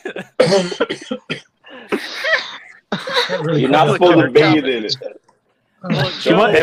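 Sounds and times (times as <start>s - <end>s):
speech: 0.1s - 1.4s, 3.4s - 5.2s, 5.8s - 6.6s
person coughing after choking on a drink: 0.4s - 3.5s.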